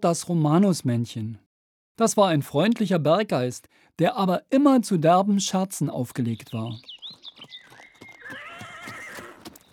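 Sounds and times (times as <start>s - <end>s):
speech: 0.0s - 1.4s, 2.0s - 6.9s
horse hooves clopping while pulling a wagon: 6.4s - 9.7s
horse pulling a wagon whinnying: 7.8s - 9.6s.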